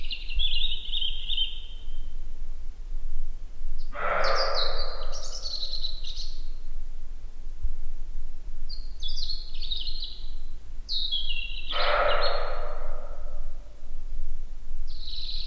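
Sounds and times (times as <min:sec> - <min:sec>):
European robin Erithacus rubecula singing short high warbling phrases: 0:00.0 - 0:02.3, 0:03.7 - 0:06.8, 0:08.6 - 0:14.0, 0:14.9 - 0:15.4
constant low rumble: 0:00.0 - 0:15.4
rushing noise bursts: 0:04.0 - 0:05.4, 0:11.7 - 0:13.8.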